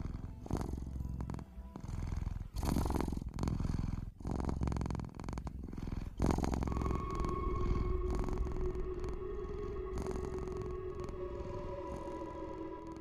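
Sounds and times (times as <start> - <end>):
cat purring: 0.0 - 12.9
soft sustained tone: 6.7 - 12.9.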